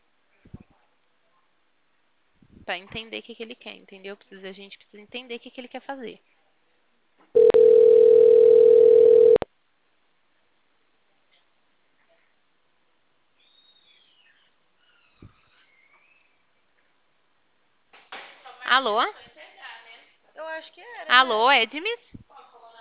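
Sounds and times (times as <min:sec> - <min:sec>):
speech: 0:02.7 - 0:06.3, 0:21.3 - 0:22.1
telephone dial tone while a call is being placed: 0:07.4 - 0:09.4.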